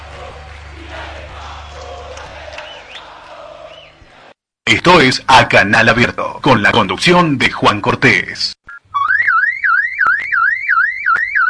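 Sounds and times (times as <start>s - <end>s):
speech: 4.8s - 8.6s
loud warbling electronic alarm: 8.7s - 11.4s.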